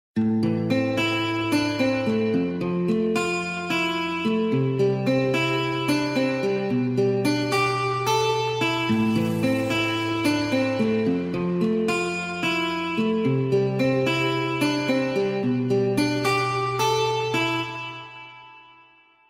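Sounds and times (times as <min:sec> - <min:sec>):
guitar ringtone: 0:00.2 - 0:19.2.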